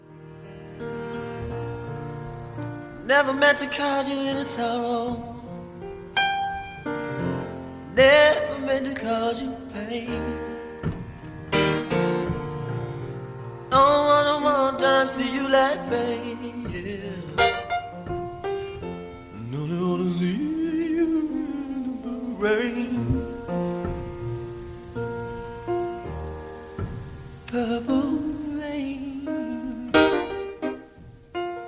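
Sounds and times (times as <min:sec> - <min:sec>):
simple held chords: 0:00.0 - 0:31.6
lone voice singing on a home song demo: 0:02.9 - 0:05.8, 0:07.2 - 0:11.0, 0:11.6 - 0:24.5, 0:27.4 - 0:31.6
speech: 0:03.1 - 0:05.3, 0:08.0 - 0:10.5, 0:13.8 - 0:16.6.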